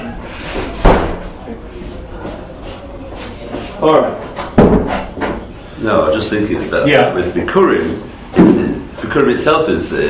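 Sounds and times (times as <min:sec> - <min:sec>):
door closing with a firm thud: 0:00.6 - 0:01.3, 0:04.4 - 0:05.4
speech: 0:03.8 - 0:04.3, 0:05.8 - 0:10.0.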